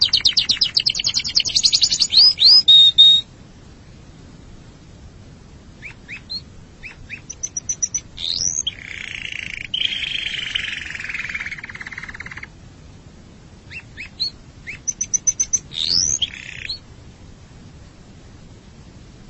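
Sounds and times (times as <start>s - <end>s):
Canary singing a fast trill, downslurred notes, soft chirps, a rising whistle and buzzy roll: 0.0s - 3.3s, 5.8s - 12.5s, 13.7s - 16.8s.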